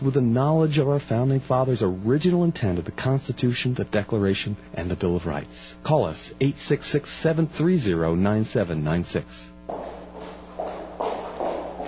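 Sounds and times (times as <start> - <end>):
speech: 0.0 - 9.9
faint constant low hum: 0.0 - 11.8
footsteps walking along a street: 9.6 - 11.8.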